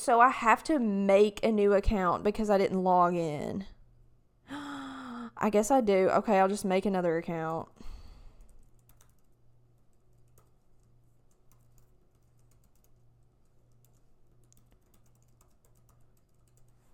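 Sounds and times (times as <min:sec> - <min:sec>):
speech: 0:00.0 - 0:03.8, 0:05.4 - 0:07.9
faint low hum: 0:00.0 - 0:16.9
typing on a computer keyboard: 0:08.4 - 0:16.9.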